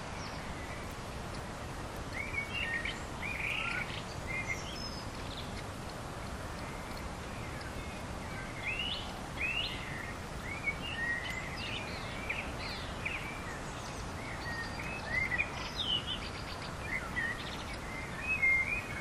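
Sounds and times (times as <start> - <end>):
steady hiss of background noise: 0.0 - 18.9
bird song with whistled and slurred phrases: 2.1 - 5.5, 7.6 - 18.9.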